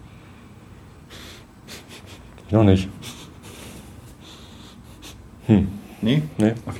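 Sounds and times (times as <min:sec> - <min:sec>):
person sniffing at a freshly opened whisky bottle: 0:01.1 - 0:02.4, 0:03.0 - 0:06.1
speech: 0:02.5 - 0:03.0, 0:05.5 - 0:06.7.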